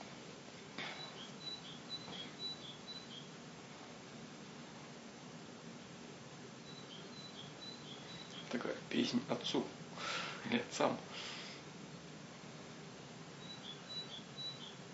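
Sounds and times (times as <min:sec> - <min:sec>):
steady broadband hiss: 0:00.0 - 0:14.9
birds chirping: 0:00.8 - 0:03.4, 0:06.5 - 0:11.2, 0:13.2 - 0:14.9
speech: 0:08.5 - 0:09.8, 0:10.4 - 0:11.3.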